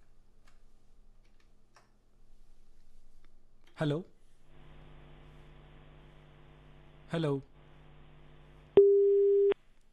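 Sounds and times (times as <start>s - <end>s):
speech: 3.8s - 4.1s, 7.1s - 7.5s
telephone busy tone after a disconnected line: 8.8s - 9.6s.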